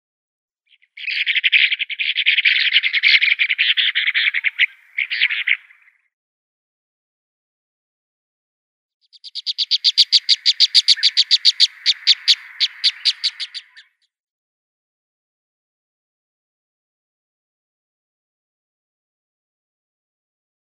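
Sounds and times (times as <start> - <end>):
Egyptian plover calling: 0.7 - 6.0, 9.1 - 14.0.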